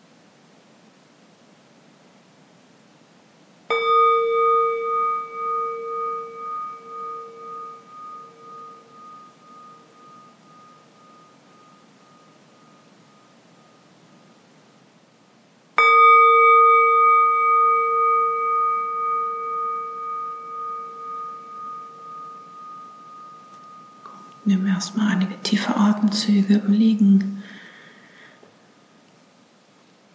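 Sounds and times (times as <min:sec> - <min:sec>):
gong struck with bright metallic tone: 0:03.7 - 0:13.7, 0:15.8 - 0:24.6
speech: 0:24.5 - 0:27.3.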